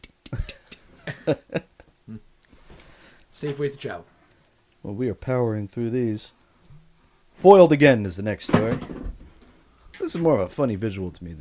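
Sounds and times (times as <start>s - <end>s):
voice making clicking mouth sounds imitating a wind-up clock ticking: 0.0s - 0.9s
speech: 1.1s - 2.2s, 3.4s - 4.1s, 4.8s - 6.4s, 7.4s - 9.0s, 10.1s - 11.3s.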